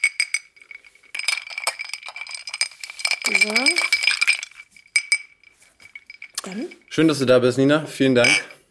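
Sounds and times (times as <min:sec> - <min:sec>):
spoon stirring a drink in a glass: 0:00.0 - 0:07.0, 0:08.2 - 0:08.6
movement: 0:00.0 - 0:08.6
speech: 0:03.3 - 0:03.9, 0:06.5 - 0:08.6.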